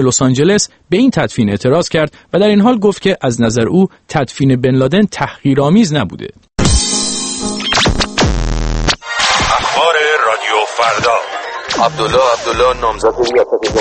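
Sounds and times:
speech: 0.0s - 6.9s, 10.8s - 13.7s
harsh radio jamming static with buzzing drones and warbling interference: 7.8s - 13.7s
garbled broken-up voices of a radio news broadcast: 9.2s - 13.7s.

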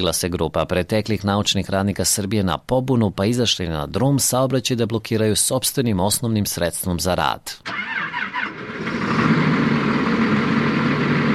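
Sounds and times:
speech: 0.0s - 8.1s
tractor diesel engine idling: 7.7s - 11.3s.

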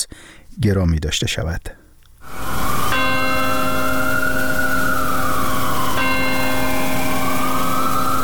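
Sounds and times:
speech: 0.6s - 1.8s
wailing siren: 2.2s - 8.2s
large church bell tolling: 2.9s - 8.2s.

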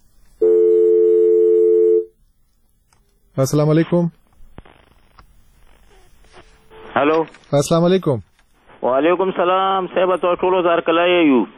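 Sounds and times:
telephone line tone during a live phone-in call: 0.4s - 2.2s
speech: 3.4s - 4.2s, 7.0s - 11.5s.

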